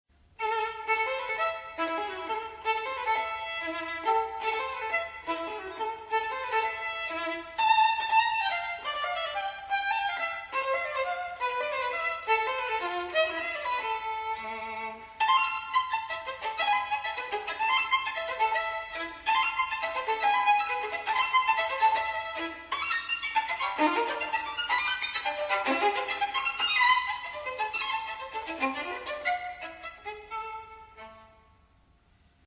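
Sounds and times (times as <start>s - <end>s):
violin: 0.2s - 31.8s.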